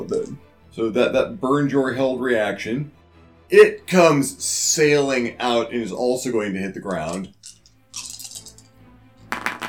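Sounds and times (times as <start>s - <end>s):
speech: 0.0s - 7.4s
dice clattering and rolling across a hard table: 7.1s - 8.7s, 9.3s - 9.6s.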